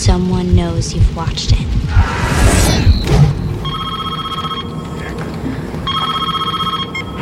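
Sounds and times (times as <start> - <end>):
speech: 0.0 - 3.3
telephone ringing with a warbling electronic trill: 3.6 - 5.1, 5.8 - 7.2.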